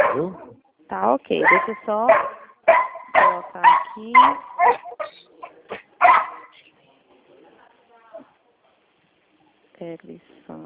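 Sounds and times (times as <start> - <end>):
dog barking: 0.0 - 0.5, 1.4 - 6.5
faint murmur of voices: 0.0 - 10.6
speech: 0.2 - 2.8, 3.4 - 4.9, 9.8 - 10.6.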